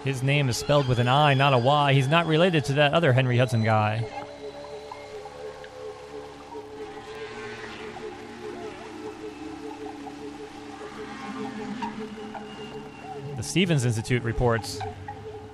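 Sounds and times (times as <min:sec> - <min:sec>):
speech: 0:00.0 - 0:04.2, 0:13.5 - 0:15.0
whale calls: 0:00.0 - 0:15.5
low watery rumble: 0:05.0 - 0:13.4.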